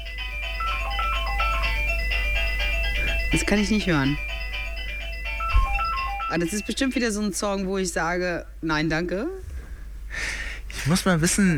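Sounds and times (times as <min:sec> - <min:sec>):
mobile phone ringtone playing electronic tune: 0:00.0 - 0:07.4
speech: 0:03.3 - 0:04.3, 0:06.3 - 0:09.5, 0:10.8 - 0:11.5.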